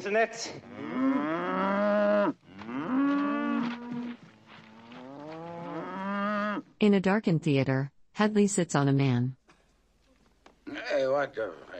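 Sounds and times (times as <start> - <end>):
speech: 0.0 - 1.2, 6.8 - 9.4, 11.1 - 11.7
cows mooing: 0.6 - 6.7.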